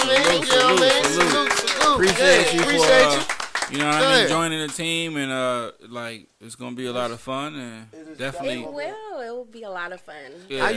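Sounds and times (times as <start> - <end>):
hosts clapping: 0.0 - 5.3
speech: 0.1 - 10.7.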